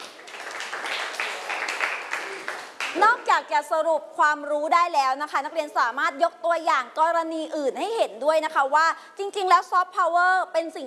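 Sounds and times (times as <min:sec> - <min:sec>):
classroom applause for a student: 0:00.0 - 0:03.2
speech: 0:03.0 - 0:10.8.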